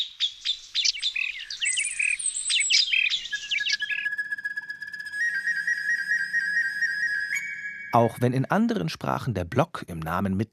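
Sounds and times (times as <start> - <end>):
recorder flute imitating birdsong: 0.0 - 8.2
speech: 7.9 - 10.5.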